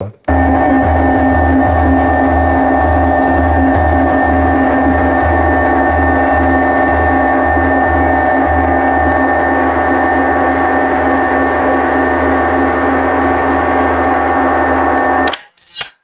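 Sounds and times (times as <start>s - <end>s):
rhythmic buzzy electronic submarine alarm: 0.3s - 15.3s.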